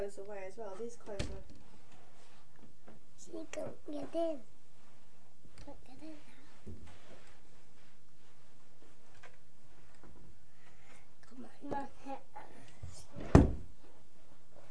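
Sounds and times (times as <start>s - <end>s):
speech: 0.0s - 1.7s, 3.2s - 4.5s, 5.6s - 6.9s, 11.4s - 13.5s
faint shuffling: 0.0s - 14.6s
door slamming: 13.2s - 13.7s.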